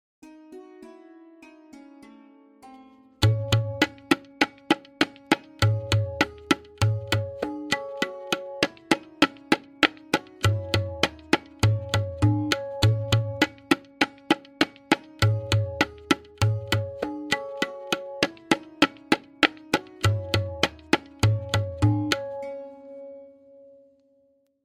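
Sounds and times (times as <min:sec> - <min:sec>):
lehra melody: 0:00.2 - 0:24.0
tabla kaida in tintal played with lehra: 0:03.2 - 0:22.8.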